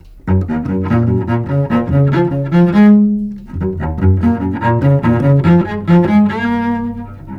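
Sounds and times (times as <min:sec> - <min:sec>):
cello: 0:00.0 - 0:07.3.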